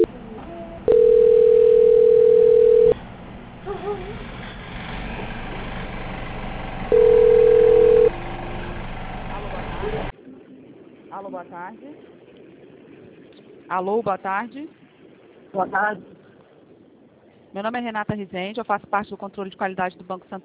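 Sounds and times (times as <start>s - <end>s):
call transfer hold tone beeps on a bank's phone line: 0.9s - 3.0s, 6.9s - 8.2s
constant hissing narrowband phone line background: 0.9s - 3.0s, 6.9s - 8.2s
speech: 13.7s - 14.8s, 15.6s - 16.1s, 17.5s - 20.4s.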